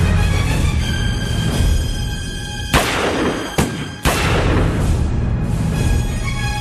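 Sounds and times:
dense tonal musical backdrop: 0:00.0 - 0:06.5
loud gunshots with brief tail: 0:02.7 - 0:05.0.

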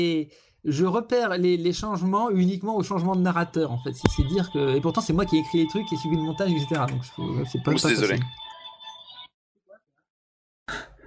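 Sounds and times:
speech: 0:00.0 - 0:08.4
mobile phone ringtone playing a film theme melody: 0:04.0 - 0:09.2.

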